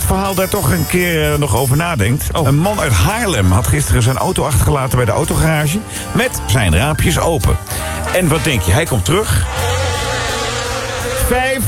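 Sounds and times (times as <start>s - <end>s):
speech: 0.1s - 9.8s, 11.3s - 11.6s
swarm of bees buzzing inside a car: 9.4s - 11.3s.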